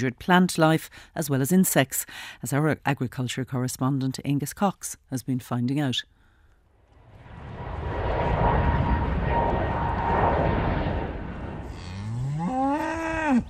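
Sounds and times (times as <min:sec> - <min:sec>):
speech: 0:00.0 - 0:06.2
steady broad rumble: 0:06.8 - 0:11.8
single loud cow moo: 0:11.7 - 0:13.4.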